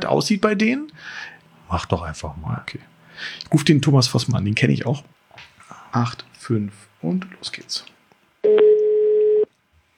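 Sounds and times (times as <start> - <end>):
speech: 0.0 - 8.7
telephone ringing tone beep on the line during a call: 8.4 - 9.5.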